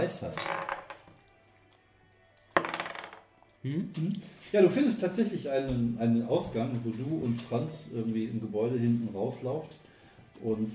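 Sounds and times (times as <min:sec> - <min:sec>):
speech: 0:00.0 - 0:00.6, 0:03.6 - 0:09.8, 0:10.4 - 0:10.7
dice clattering across a hard surface: 0:02.6 - 0:03.3.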